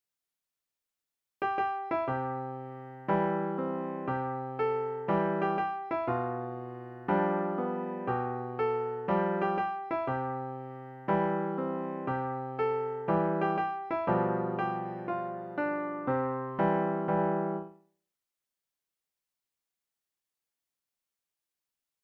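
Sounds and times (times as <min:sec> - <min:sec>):
piano piece: 0:01.4 - 0:17.8.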